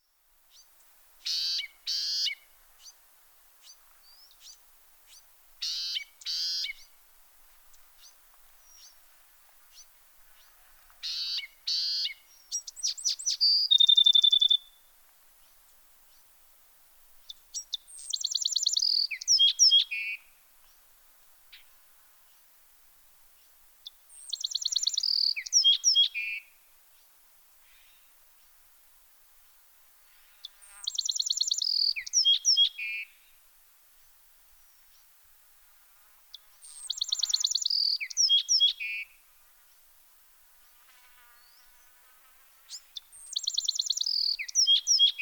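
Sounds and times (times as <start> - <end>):
Bewick's wren calling: 0.5 - 3.0, 3.6 - 6.9, 9.7 - 14.8, 17.2 - 20.2, 23.8 - 26.4, 30.4 - 33.1, 36.3 - 39.1, 42.7 - 45.1.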